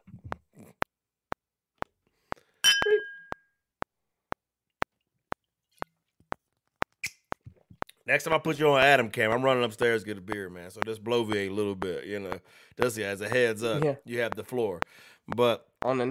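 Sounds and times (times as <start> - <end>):
glass clinking: 2.6 - 3.4
ticking of sharp clicks: 4.8 - 8.0, 9.8 - 15.9
speech: 8.1 - 16.0.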